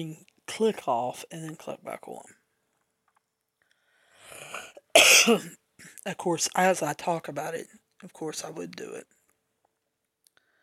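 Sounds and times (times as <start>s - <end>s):
speech: 0.0s - 2.4s, 5.0s - 9.2s
drawn-in raspy breath: 3.7s - 4.8s, 10.4s - 10.6s
person coughing: 4.4s - 6.0s.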